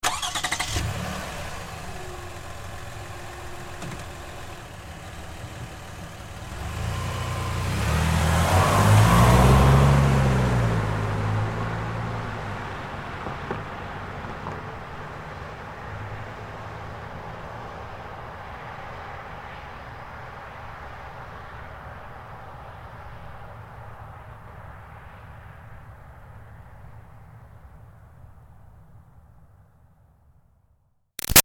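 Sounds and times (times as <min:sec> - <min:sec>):
2005 Toyota Highlander V6 starting and driving away: 0:00.0 - 0:24.5.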